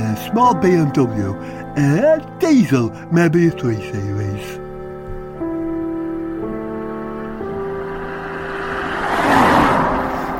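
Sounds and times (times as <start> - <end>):
speech: 0.2 - 4.6
big white Ford Transit van passing: 5.8 - 10.3.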